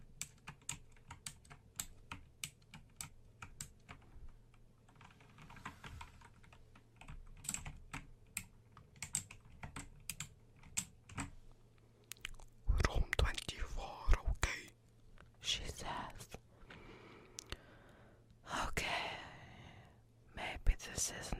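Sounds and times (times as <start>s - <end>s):
typing on a computer keyboard: 0.0s - 11.3s
low steady hum: 0.0s - 21.3s.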